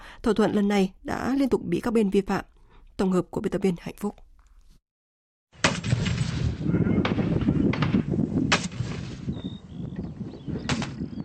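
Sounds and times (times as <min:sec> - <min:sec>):
speech: 0:00.2 - 0:04.3
sharp gunshots in a city: 0:05.6 - 0:09.4, 0:10.6 - 0:11.2
artillery rumbling in a city: 0:05.6 - 0:11.2.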